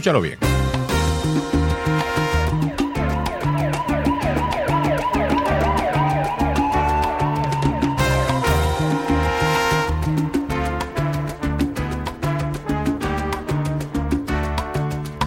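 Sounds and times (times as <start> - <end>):
speech: 0.0 - 0.5
busy music intro with brass-like tones and percussion hits: 0.4 - 15.2
police-style siren wailing: 1.7 - 10.2.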